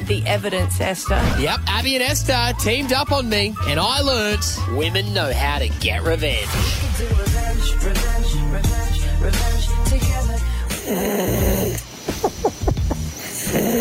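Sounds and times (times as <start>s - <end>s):
speech: 0.1s - 12.6s
person snoring: 10.4s - 11.8s, 13.1s - 13.7s.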